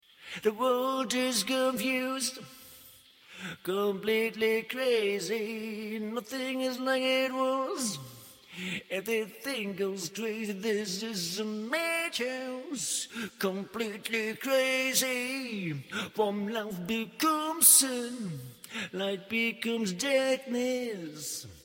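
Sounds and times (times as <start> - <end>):
a cappella rock vocals: 0.0 - 21.6.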